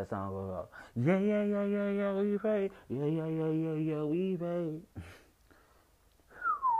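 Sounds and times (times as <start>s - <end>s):
speech: 0.0s - 5.2s
person attempting to whistle a song's melody: 6.3s - 6.7s.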